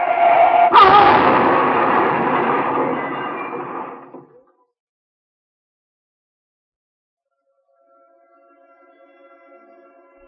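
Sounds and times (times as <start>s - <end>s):
car tyre screech in a skid: 0.2s - 1.5s
loud rumbling roar after a car crash: 0.7s - 4.2s
car crash impact: 0.7s - 4.4s.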